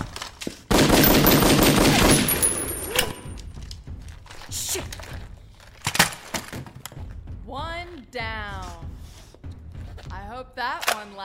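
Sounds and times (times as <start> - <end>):
rapid gunfire: 0.7 - 2.7.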